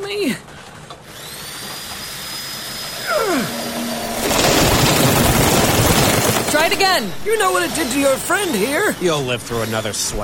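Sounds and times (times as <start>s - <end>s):
speech: 0.1s - 0.5s, 6.8s - 10.2s
power drill boring into a wall: 1.0s - 3.0s, 4.2s - 10.2s.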